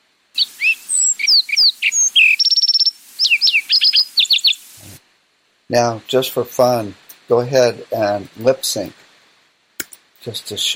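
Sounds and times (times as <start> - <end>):
sparrow singing: 0.4 - 4.8
speech: 5.7 - 9.0, 10.2 - 10.7.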